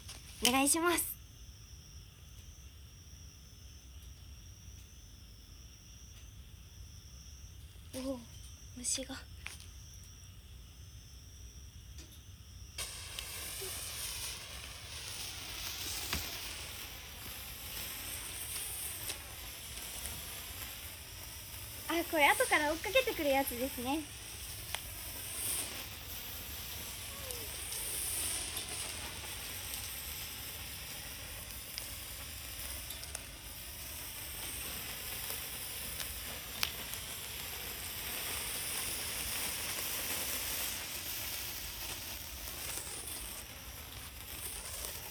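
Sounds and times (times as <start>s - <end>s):
hissing crackle of sparks, likely a sparkler: 0.0s - 2.8s, 3.6s - 45.0s
speech: 0.4s - 1.1s, 8.0s - 9.6s, 22.0s - 24.2s.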